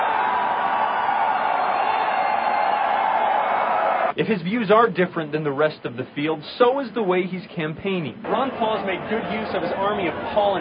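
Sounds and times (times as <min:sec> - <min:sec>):
large crowd cheering and applauding at a rally: 0:00.0 - 0:04.1
speech: 0:04.2 - 0:10.5.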